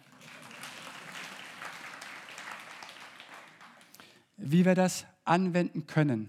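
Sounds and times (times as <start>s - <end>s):
audience applauding: 0.0s - 4.3s
speech: 4.4s - 6.2s.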